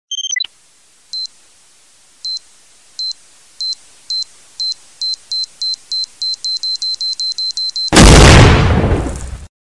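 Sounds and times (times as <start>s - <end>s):
bomb blast ringtone: 6.3s - 8.4s.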